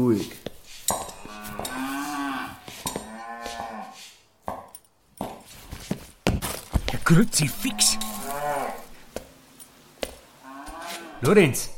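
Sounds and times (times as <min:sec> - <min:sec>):
speech: 0:00.0 - 0:00.4, 0:07.1 - 0:08.0, 0:11.2 - 0:11.7
cattle mooing inside a barn: 0:01.0 - 0:04.0, 0:07.5 - 0:09.0, 0:10.4 - 0:11.3.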